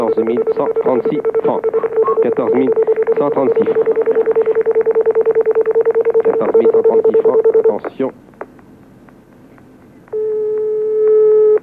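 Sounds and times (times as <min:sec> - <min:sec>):
telephone ringback tone on a call placed to the Cantal in France: 0:00.0 - 0:07.8, 0:10.1 - 0:11.6
speech: 0:00.1 - 0:04.0, 0:06.4 - 0:08.2.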